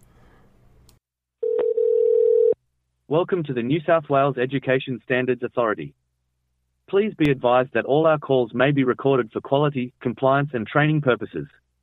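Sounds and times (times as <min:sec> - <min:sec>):
telephone ringing tone on an outgoing call: 0:01.4 - 0:02.6
speech: 0:03.1 - 0:06.0, 0:06.9 - 0:11.6.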